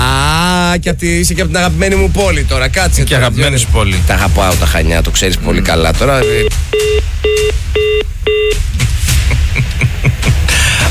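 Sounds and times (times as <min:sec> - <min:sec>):
steady low rumble: 0:00.0 - 0:10.5
speech: 0:00.8 - 0:07.8
telephone keypad beeps: 0:06.2 - 0:08.6.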